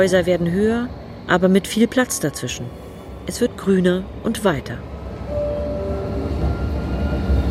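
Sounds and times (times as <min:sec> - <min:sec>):
speech: 0:00.0 - 0:04.9
tram rumbling along the rails: 0:00.0 - 0:07.4
tram wheel squeal rounding a curve: 0:05.3 - 0:07.4.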